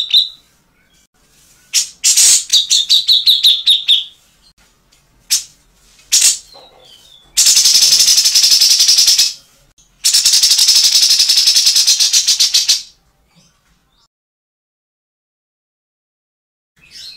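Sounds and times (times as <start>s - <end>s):
Grey-cheeked bulbul giving harsh rattling calls: 1.7s - 4.1s, 6.1s - 9.4s, 10.0s - 12.9s.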